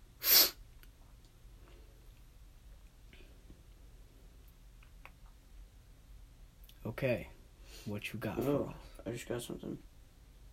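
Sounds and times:
person sniffing: 0.2 - 0.6
speech: 6.9 - 9.9.

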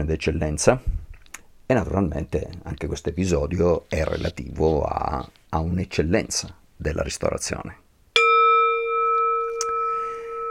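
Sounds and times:
speech: 0.0 - 1.0, 1.7 - 7.8
Tibetan singing bowl struck and ringing: 8.2 - 10.5.

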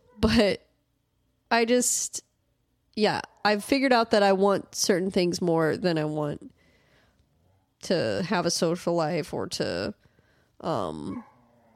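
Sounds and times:
speech: 0.2 - 0.6, 1.5 - 2.3, 3.0 - 6.5, 7.8 - 10.0, 10.6 - 11.3
dog barking and whimpering: 11.0 - 11.7.

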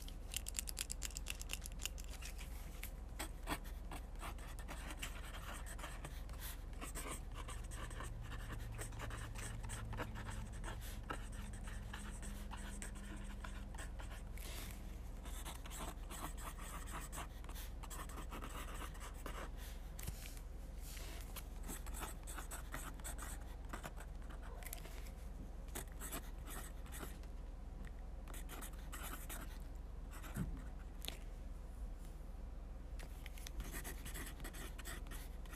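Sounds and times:
faint low hum: 0.0 - 35.5
pen scratching and tapping on paper during fast note taking: 3.2 - 14.3, 15.2 - 19.5, 21.6 - 24.4, 25.8 - 27.1, 28.3 - 29.6, 33.6 - 35.5.

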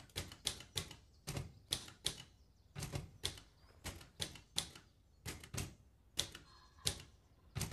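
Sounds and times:
manual typewriter typing: 0.0 - 7.7.

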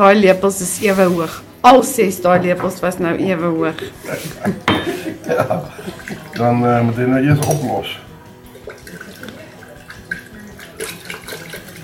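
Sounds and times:
speech: 0.0 - 8.0
laughter: 3.9 - 6.4
water pouring into a container for cooking: 5.1 - 11.8.

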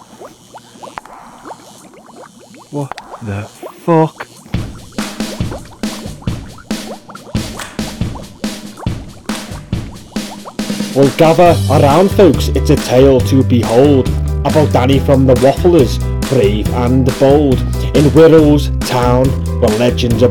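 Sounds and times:
potion liquid bubbling and gurgling with pops and drips: 0.0 - 11.2
speech: 2.7 - 4.3, 11.0 - 20.3.

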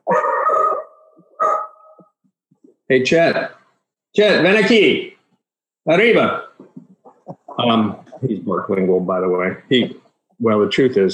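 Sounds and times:
dog howling and barking, wanting to go outside: 0.0 - 2.0
speech: 2.9 - 5.1, 5.8 - 6.4, 7.6 - 11.1.

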